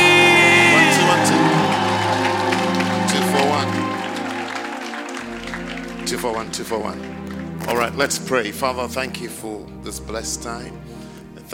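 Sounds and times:
audience clapping and shouting: 0.0s - 8.3s
speech: 6.3s - 11.5s.

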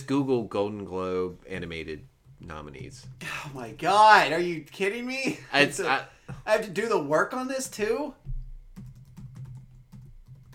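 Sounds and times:
speech: 0.1s - 8.3s
typing on a computer keyboard: 8.3s - 10.5s.

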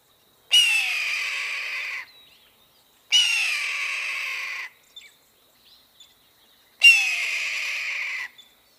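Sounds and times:
bird of prey giving loud harsh raspy shrieks: 0.5s - 2.1s, 3.1s - 4.7s, 6.8s - 8.4s.

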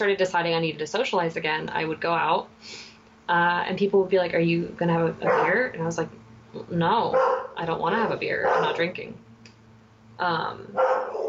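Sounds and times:
speech: 0.0s - 9.3s, 10.2s - 11.1s
low hum: 0.0s - 11.2s
dog barking loudly: 5.3s - 5.6s, 7.1s - 7.6s, 8.4s - 8.8s, 10.8s - 11.2s.

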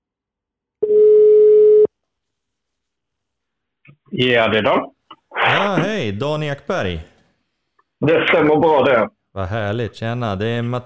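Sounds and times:
outgoing phone call ringback tone: 0.8s - 1.9s
speech: 4.1s - 7.1s, 8.0s - 10.8s.

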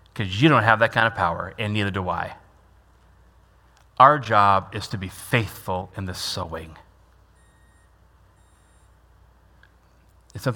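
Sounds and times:
speech: 0.2s - 2.4s, 4.0s - 6.8s, 10.4s - 10.5s
electronic beeps: 7.4s - 8.9s.

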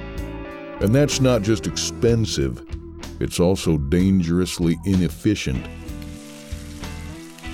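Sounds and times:
speech: 0.8s - 5.8s
meat sizzling in a hot frying pan: 5.8s - 7.5s.

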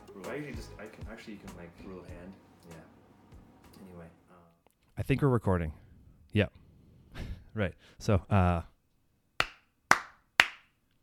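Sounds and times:
speech: 0.4s - 3.0s, 5.0s - 6.6s, 7.6s - 8.7s
hand claps to sync audio to video: 9.4s - 10.8s.

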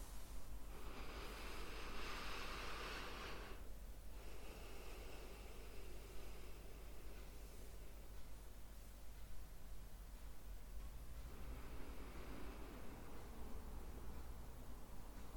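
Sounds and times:
slow deep breaths in and out through the nose: 0.0s - 8.5s, 11.1s - 14.5s
quiet hiss: 0.0s - 15.3s.

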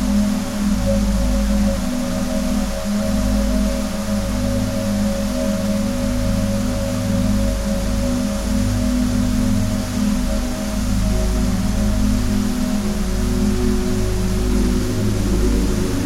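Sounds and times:
deep sustained relaxing music tones: 0.0s - 16.0s.

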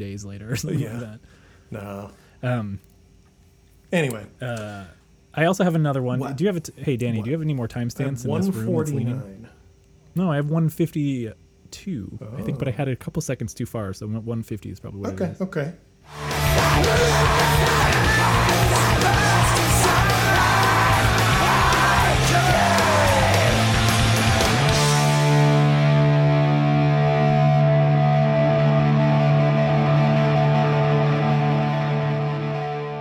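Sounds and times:
speech: 0.0s - 2.9s, 3.9s - 9.5s, 10.2s - 19.2s
loud heavily distorted rock song: 16.1s - 33.0s
raw wailing scream: 16.4s - 24.7s.

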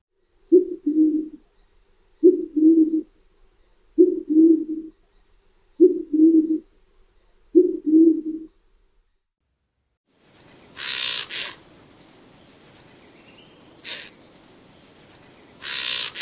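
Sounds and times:
band-tailed pigeon giving low hooting coos: 0.5s - 1.4s, 2.2s - 3.1s, 4.0s - 4.9s, 5.8s - 6.7s, 7.5s - 8.5s, 15.6s - 16.1s.

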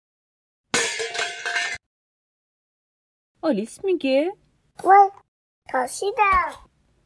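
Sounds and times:
metal pot lid dropping and clattering: 0.8s - 1.8s
speech: 3.4s - 6.7s.

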